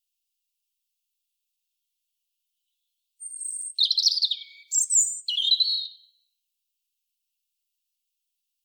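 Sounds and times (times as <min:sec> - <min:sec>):
European robin Erithacus rubecula song with scratchy warbled trills: 0:03.2 - 0:06.2.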